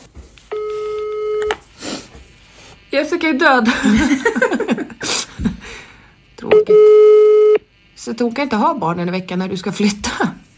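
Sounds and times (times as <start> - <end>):
telephone ringback tone: 0.5 - 1.6, 6.5 - 7.6
speech: 2.9 - 5.2, 6.5 - 7.2, 8.0 - 10.4
laughter: 3.6 - 5.6.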